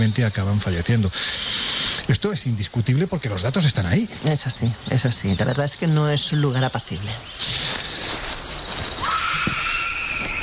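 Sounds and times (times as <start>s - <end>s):
speech: 0.0s - 7.7s
hiss: 0.0s - 10.4s
high drawn-out eerie distant scream: 9.0s - 10.4s.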